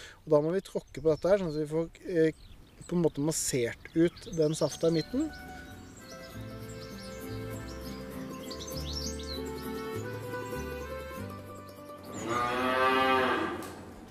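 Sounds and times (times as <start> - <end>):
speech: 0.2 - 5.6
young calves mooing in a barn: 12.2 - 13.9.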